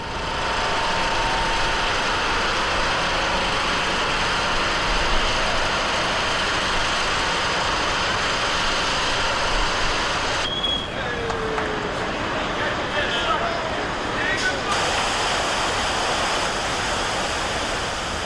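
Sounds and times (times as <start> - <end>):
crane engine running at a river diversion ceremony: 0.0 - 18.2
river water rushing into new channel: 14.7 - 18.2.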